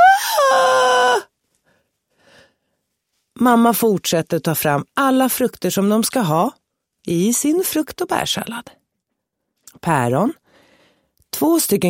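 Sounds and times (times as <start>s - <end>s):
child lying on the floor howling and whining: 0.0s - 1.3s
speech: 3.4s - 8.8s, 9.7s - 10.4s, 11.4s - 11.8s.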